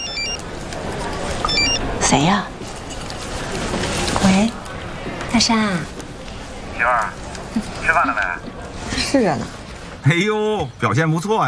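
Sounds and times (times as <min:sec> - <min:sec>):
phone ringtone chiming: 0:00.0 - 0:00.4, 0:01.4 - 0:01.8
murmur of a busy room: 0:00.0 - 0:11.4
speech: 0:02.1 - 0:02.6, 0:04.2 - 0:04.6, 0:05.3 - 0:06.0, 0:06.8 - 0:08.5, 0:09.1 - 0:11.4.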